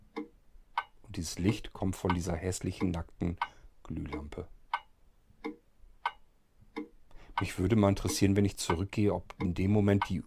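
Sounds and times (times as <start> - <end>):
wall clock ticking: 0.0 - 10.2
speech: 1.2 - 4.6, 7.4 - 10.2.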